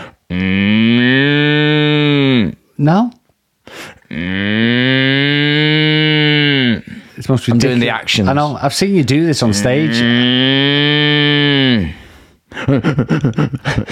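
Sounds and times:
person imitating a Moo Box cow toy moo: 0.3 - 2.6, 4.1 - 7.1, 9.4 - 12.0
speech: 2.8 - 4.7, 7.3 - 11.2, 12.7 - 13.9
person talking quickly: 7.2 - 10.1
laughter: 12.6 - 13.9.

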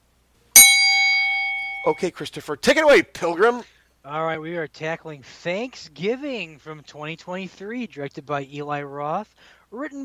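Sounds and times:
bell ding: 0.6 - 2.1
speech: 1.8 - 10.0.

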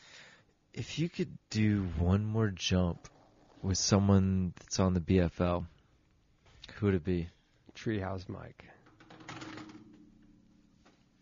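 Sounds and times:
speech: 0.8 - 5.7, 6.8 - 8.8
phone dropping with a clattering knock and rattling taps: 8.9 - 10.2.

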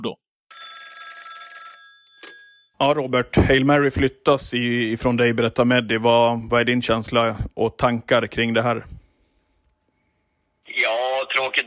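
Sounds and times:
mobile phone ringing tone placing a call: 0.5 - 2.8
speech: 2.8 - 9.0, 10.7 - 11.6.

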